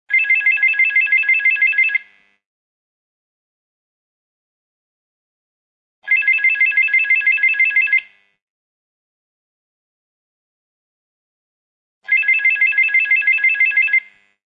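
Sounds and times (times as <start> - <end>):
digital telephone ringing: 0.1 - 2.1, 6.0 - 8.2, 12.1 - 14.3.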